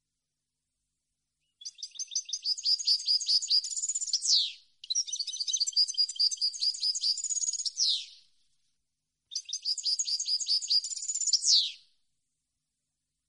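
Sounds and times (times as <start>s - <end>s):
European goldfinch singing: 1.6s - 8.2s, 9.3s - 11.8s.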